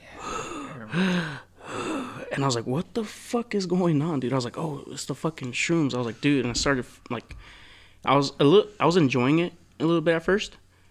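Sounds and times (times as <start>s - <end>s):
voice imitating heavy breathing: 0.0s - 2.4s
speech: 0.9s - 1.4s, 2.4s - 10.6s.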